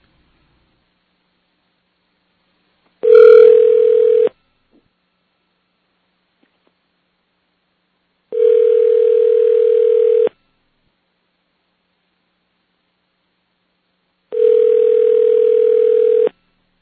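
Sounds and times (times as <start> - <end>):
telephone ringback tones: 3.1 - 4.3, 8.3 - 10.3, 14.3 - 16.3.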